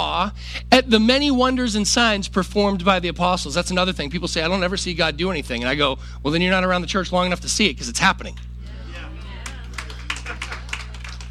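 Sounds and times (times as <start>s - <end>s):
speech: 0.0s - 8.5s
steady low hum: 0.0s - 11.3s
laughter: 8.6s - 11.3s
congregation clapping: 9.2s - 11.3s.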